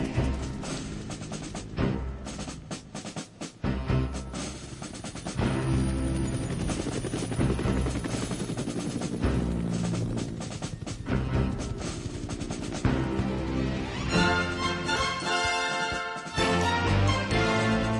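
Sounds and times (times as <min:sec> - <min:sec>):
helicopter rotor thrumming: 0:00.0 - 0:17.9.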